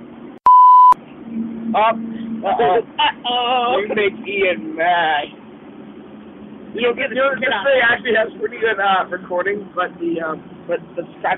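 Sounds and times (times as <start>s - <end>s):
censor bleep over bad language: 0.5s - 2.7s
speech: 1.7s - 5.4s, 6.8s - 11.3s.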